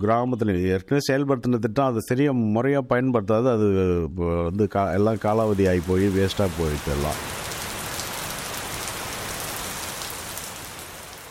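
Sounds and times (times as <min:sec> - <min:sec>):
speech: 0:00.0 - 0:07.4
steady rain pouring onto the ground: 0:04.8 - 0:11.3.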